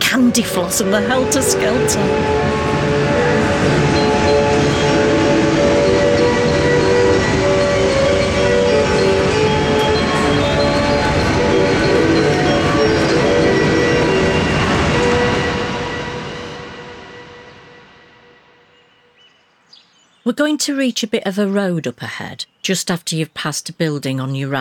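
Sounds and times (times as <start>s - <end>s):
train rumbling with rattling roar: 0.0s - 18.8s
speech: 0.1s - 4.0s, 20.3s - 24.5s.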